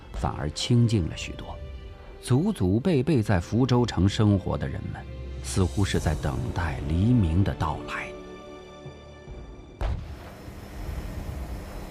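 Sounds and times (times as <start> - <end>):
speech: 0.2 - 1.6, 2.2 - 8.1
distant continuous artillery fire: 9.8 - 11.4.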